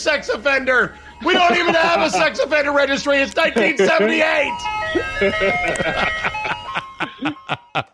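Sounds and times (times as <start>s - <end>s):
speech: 0.0s - 6.4s, 7.5s - 7.9s
tinkling ice cream truck jingle: 0.0s - 7.9s
person shouting excitedly: 1.2s - 2.3s, 3.6s - 4.6s
laughter: 1.2s - 7.9s.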